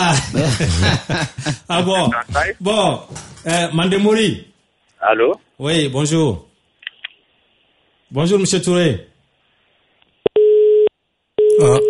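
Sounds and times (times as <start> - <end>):
laughter: 0.0 - 2.5
speech: 0.0 - 6.5, 8.1 - 9.1, 11.6 - 11.8
telephone busy tone beeps after a call is cut off: 10.4 - 11.8.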